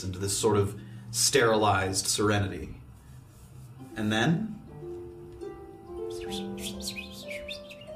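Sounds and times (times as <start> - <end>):
speech: 0.0 - 2.8, 4.0 - 4.6
low hum: 0.0 - 7.9
birds chirping: 6.1 - 7.9.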